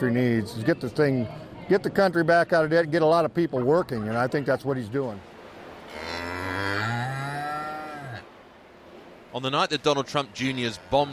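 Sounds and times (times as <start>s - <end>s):
speech: 0.0s - 5.3s, 9.3s - 11.1s
agitated pig bellowing in cattle sheds at a county fair: 5.9s - 8.3s.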